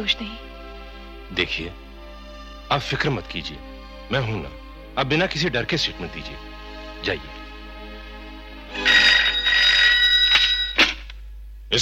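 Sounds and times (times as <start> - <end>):
speech: 0.0 - 0.5, 1.3 - 1.8, 2.7 - 7.4
telephone ringing with a bright electronic trill: 8.7 - 11.0.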